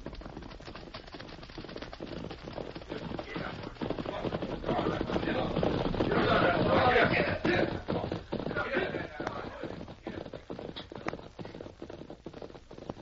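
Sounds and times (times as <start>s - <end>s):
big group of riders on horseback galloping along a trail: 0.0s - 13.0s.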